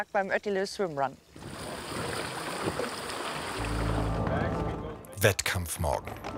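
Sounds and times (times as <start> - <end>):
speech: 0.0 - 1.3, 2.6 - 3.0, 5.2 - 6.3
steady water noise: 1.2 - 4.9.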